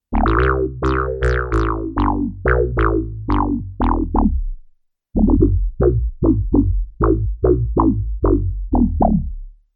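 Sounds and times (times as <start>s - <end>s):
Arturia MicroFreak weird synthesizer bass: 0.1s - 4.6s, 5.2s - 9.6s.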